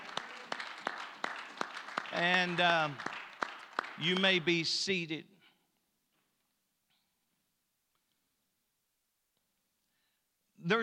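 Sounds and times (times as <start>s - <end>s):
audience clapping together: 0.0s - 5.0s
speech: 2.2s - 3.1s, 4.0s - 5.3s, 10.7s - 10.8s.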